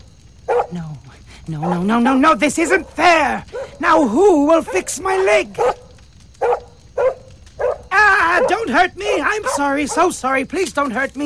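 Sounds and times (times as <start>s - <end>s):
dog barking with a growly tail: 0.4s - 0.7s, 2.7s - 10.2s
speech: 0.7s - 5.8s, 8.7s - 11.2s.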